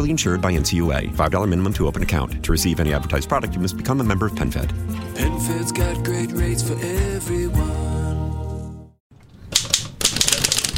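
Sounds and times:
speech: 0:00.0 - 0:08.0
manual typewriter keys clacking in a typewriter repair shop in Maplewood: 0:09.5 - 0:10.7.

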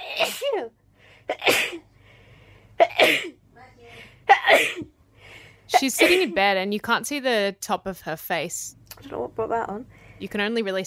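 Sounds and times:
woman's rapid sneezing fit: 0:00.0 - 0:00.7, 0:04.3 - 0:04.9, 0:05.7 - 0:06.4
speech: 0:00.2 - 0:01.9, 0:05.7 - 0:10.8.

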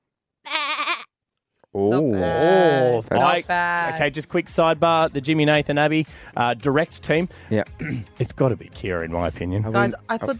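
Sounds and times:
person imitating a goat bleat: 0:00.4 - 0:01.1, 0:01.9 - 0:03.6
speech: 0:01.8 - 0:10.3.

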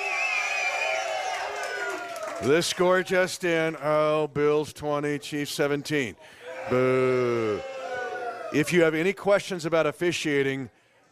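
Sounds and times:
higher whoops from the crowd: 0:00.0 - 0:02.4, 0:06.4 - 0:08.6
rowdy crowd cheering and shouting at a live show in Olathe: 0:00.0 - 0:03.3, 0:06.4 - 0:08.7
speech: 0:02.4 - 0:07.8, 0:08.5 - 0:10.8.

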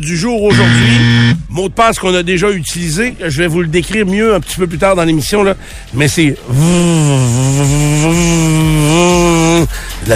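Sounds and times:
speech: 0:00.0 - 0:10.1
voice imitating the buzzing vibration of an erotic shop item: 0:00.5 - 0:01.4, 0:06.5 - 0:09.6.

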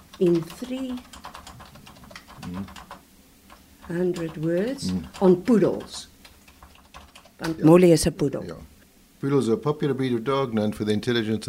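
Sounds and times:
typing a prompt on computer keyboard: 0:00.0 - 0:07.6
faint low hum: 0:00.0 - 0:11.4
speech: 0:00.2 - 0:01.2, 0:02.5 - 0:02.8, 0:03.9 - 0:06.1, 0:07.4 - 0:11.4.

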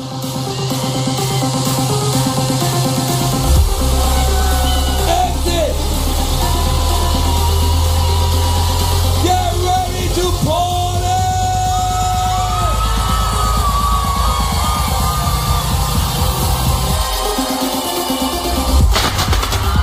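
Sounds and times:
crowd cheering and shouting: 0:00.0 - 0:19.8
fireworks crackling and popping: 0:18.9 - 0:19.8.

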